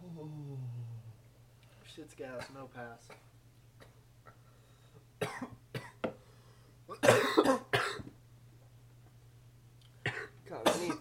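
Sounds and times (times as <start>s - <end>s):
faint low hum: 0.0s - 10.9s
speech: 2.0s - 3.3s
harsh coughing after smoking: 5.2s - 6.0s, 6.9s - 8.1s, 10.0s - 10.9s.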